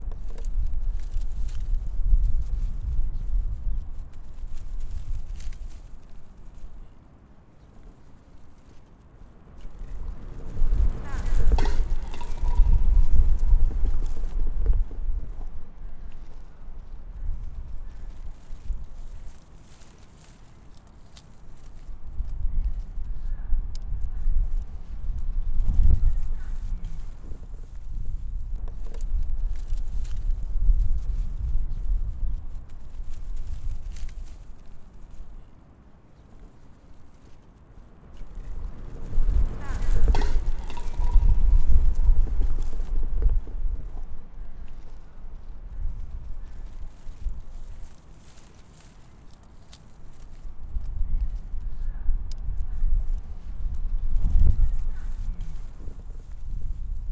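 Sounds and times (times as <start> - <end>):
wind: 0.0 - 57.1.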